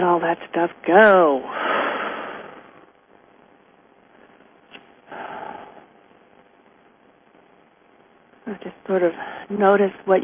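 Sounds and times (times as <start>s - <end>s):
speech: 0.0s - 1.6s, 8.9s - 10.2s
deep breathing during a guided relaxation exercise: 1.5s - 2.9s, 5.1s - 5.9s.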